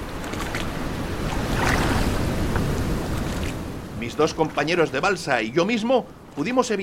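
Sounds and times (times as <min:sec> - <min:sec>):
ocean waves washing and surging: 0:00.0 - 0:06.8
steady wind roaring over a churning sea: 0:00.0 - 0:06.8
speech: 0:04.1 - 0:06.8.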